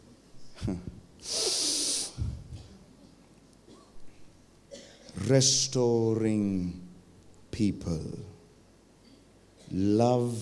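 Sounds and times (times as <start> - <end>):
speech: 0.6 - 1.4, 5.3 - 6.8, 7.6 - 8.4, 9.7 - 10.3
audience exhaling loudly together: 1.2 - 2.4.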